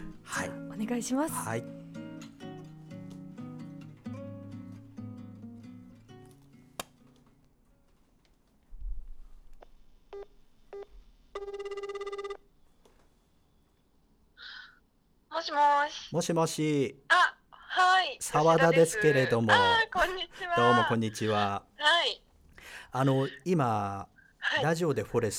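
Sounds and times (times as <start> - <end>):
music: 0.0 - 7.9
speech: 0.8 - 1.8, 16.1 - 17.0, 18.2 - 22.2, 22.9 - 25.3
person answering a phone call: 10.2 - 12.4, 18.6 - 21.5
short telephone dialing beeps: 10.2 - 12.4
steady telephone ringback tone: 11.4 - 12.4.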